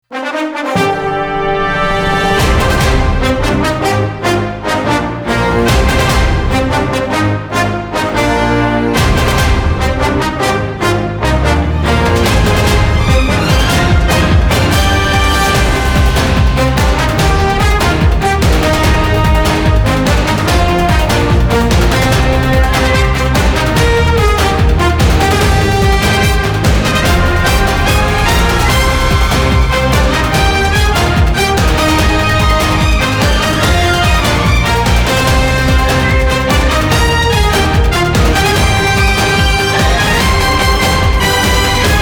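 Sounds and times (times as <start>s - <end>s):
orchestral hybrid television theme music: 0.0s - 41.9s.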